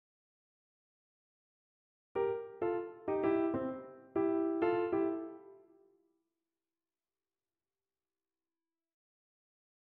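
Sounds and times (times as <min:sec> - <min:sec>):
blues piano lick: 0:02.2 - 0:05.5.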